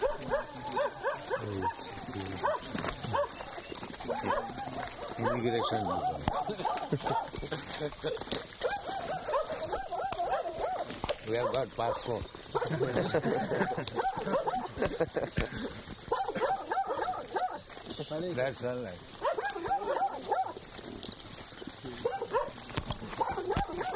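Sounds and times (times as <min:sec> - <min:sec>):
dog barking and whimpering: 0:00.0 - 0:07.4, 0:08.6 - 0:14.8, 0:16.1 - 0:17.6, 0:19.2 - 0:20.6, 0:22.0 - 0:23.9
laughter: 0:04.1 - 0:08.4, 0:12.6 - 0:16.8
speech: 0:05.4 - 0:08.6, 0:11.3 - 0:16.1, 0:18.1 - 0:19.2.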